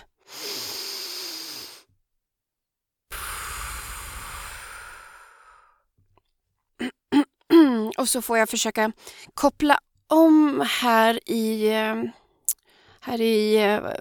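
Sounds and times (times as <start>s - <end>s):
deep breath: 0.0s - 1.9s, 3.1s - 5.9s, 12.2s - 13.0s
speech: 8.0s - 12.2s, 13.0s - 13.9s.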